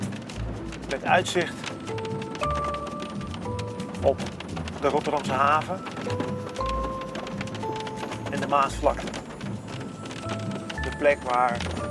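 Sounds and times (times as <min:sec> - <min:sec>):
low road rumble: 0:00.0 - 0:11.8
rain pattering on a moving car: 0:00.0 - 0:11.8
speech: 0:00.9 - 0:02.1, 0:04.0 - 0:06.8, 0:08.3 - 0:09.2, 0:10.9 - 0:11.8.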